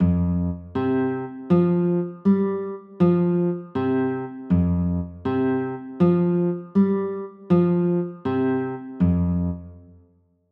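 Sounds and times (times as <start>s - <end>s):
F sus2 chord on guitar: 0.0s - 10.0s.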